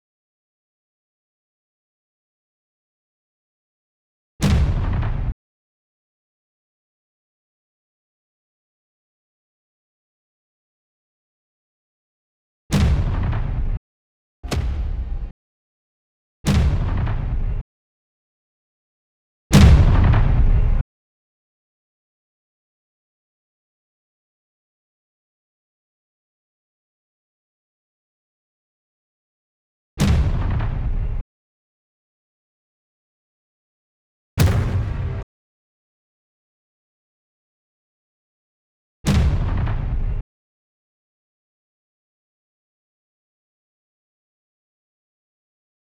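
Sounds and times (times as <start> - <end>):
booms at 120 bpm: 4.4 - 5.4, 12.7 - 13.8, 14.5 - 15.3, 16.5 - 17.6, 19.5 - 20.8, 30.0 - 31.2, 34.4 - 35.3, 39.1 - 40.2.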